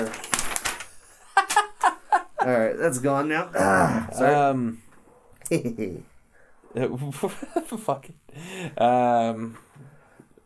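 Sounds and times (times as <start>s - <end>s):
paper crinkling and crumpling: 0.0s - 1.9s
speech: 2.4s - 4.8s, 5.5s - 6.1s, 6.8s - 9.7s.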